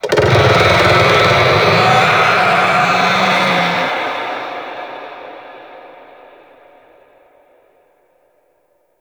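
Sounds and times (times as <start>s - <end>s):
infested golem monster vocal attack: 0.0s - 4.6s.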